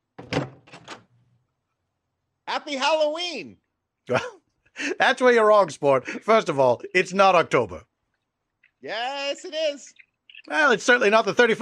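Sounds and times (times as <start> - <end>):
door latch and frame clattering and rattling: 0.2 - 1.1
speech: 2.6 - 7.9, 8.8 - 11.6.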